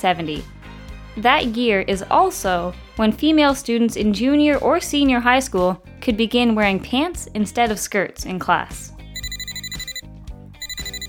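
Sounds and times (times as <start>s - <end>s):
speech: 0.0s - 0.6s, 1.2s - 8.9s
old dial telephone bell ringing: 9.2s - 10.0s, 10.6s - 11.0s.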